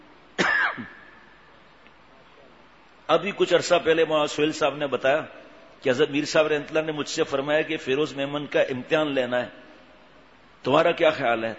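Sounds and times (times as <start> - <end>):
single sharp person coughing: 0.4 - 1.1
speech: 3.1 - 9.6, 10.6 - 11.5.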